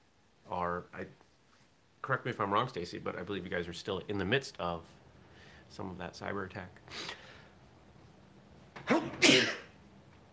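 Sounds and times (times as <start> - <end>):
speech: 2.1 - 5.0, 5.7 - 7.2
person sneezing with a coughing edge: 8.8 - 9.8.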